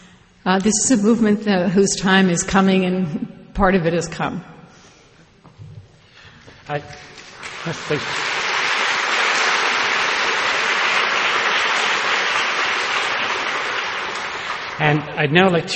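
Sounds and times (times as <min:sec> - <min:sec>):
speech: 0:00.4 - 0:04.6, 0:06.7 - 0:08.3, 0:14.8 - 0:15.7
large audience applauding after a lecture: 0:07.0 - 0:15.1.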